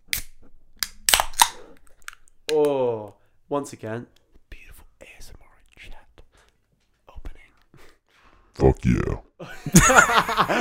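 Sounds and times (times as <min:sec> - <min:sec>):
beer cans cracking open with fizzy hiss: 0:00.1 - 0:02.6
speech: 0:03.5 - 0:04.2, 0:08.8 - 0:10.5
quiet breathy whispering: 0:04.5 - 0:06.3, 0:07.0 - 0:07.6, 0:08.6 - 0:09.2
laughter: 0:09.4 - 0:10.5.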